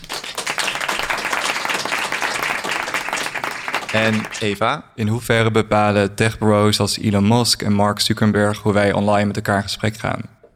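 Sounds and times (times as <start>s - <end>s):
crowd applauding: 0.0s - 4.6s
speech: 3.9s - 10.4s.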